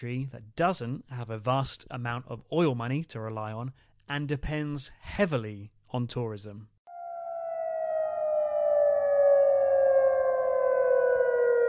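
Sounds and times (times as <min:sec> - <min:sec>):
speech: 0:00.0 - 0:06.7
air raid sirens in Jordan wailing to mark curfew start: 0:06.9 - 0:11.6.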